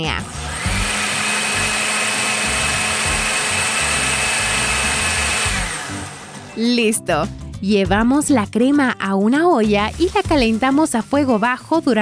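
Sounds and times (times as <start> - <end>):
speech: 0.0 - 0.4, 6.6 - 12.0
electric blender pureeing vegetable soup: 0.0 - 6.6, 9.9 - 12.0.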